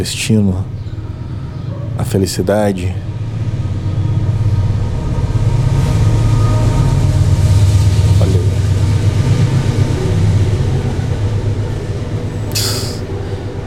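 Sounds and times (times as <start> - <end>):
speech: 0.0 - 0.8, 2.0 - 3.1
train rolling past: 0.0 - 13.6
brief sharp hiss: 12.5 - 13.0.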